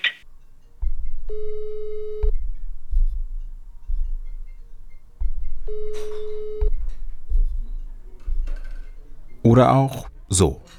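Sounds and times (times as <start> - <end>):
low rhythmic thumping: 0.2 - 10.7
telephone busy signal: 1.3 - 2.3, 5.7 - 6.8
speech: 9.5 - 10.7.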